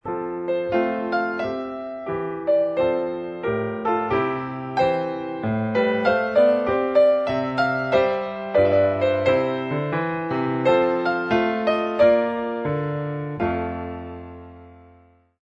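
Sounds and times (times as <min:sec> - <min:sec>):
air played on piano: 0:00.0 - 0:15.4.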